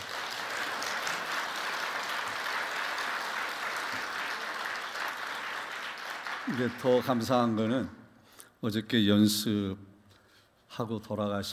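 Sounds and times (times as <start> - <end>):
audience applauding: 0.0 - 7.8
speech: 6.5 - 8.0, 8.6 - 9.9, 10.7 - 11.5.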